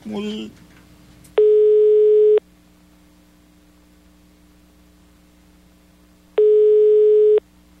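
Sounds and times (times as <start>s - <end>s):
person speaking: 0.0s - 0.6s
low constant hum: 0.0s - 7.7s
telephone line ringback tones during a call: 1.4s - 2.4s, 6.4s - 7.4s.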